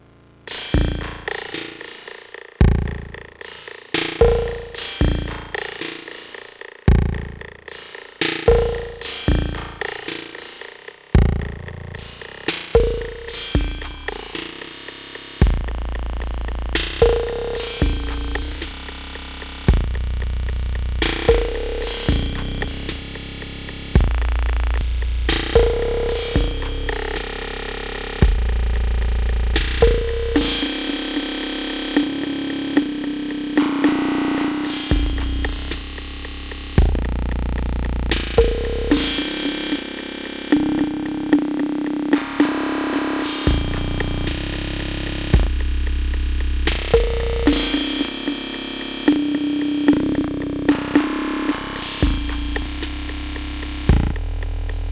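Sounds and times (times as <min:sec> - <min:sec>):
808 drum machine with delay: 0:02.6 - 0:03.4, 0:04.0 - 0:06.2, 0:08.3 - 0:10.4, 0:11.2 - 0:54.9.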